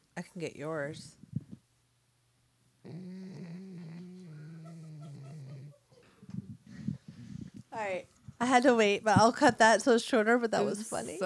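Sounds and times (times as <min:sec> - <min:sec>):
speech: 0:00.2 - 0:01.2, 0:07.8 - 0:11.2
dog snoring: 0:02.8 - 0:07.5.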